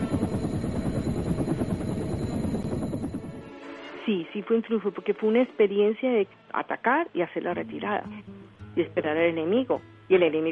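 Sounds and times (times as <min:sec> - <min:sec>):
military helicopter flying with deep rotor chop: 0:00.0 - 0:03.5
speech: 0:04.1 - 0:10.5.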